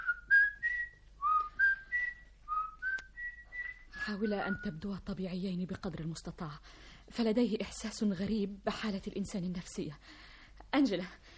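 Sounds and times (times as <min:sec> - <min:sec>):
whistled signal from a person's mouth: 0:00.0 - 0:04.0
faint low hum: 0:00.0 - 0:11.3
speech: 0:04.1 - 0:11.3.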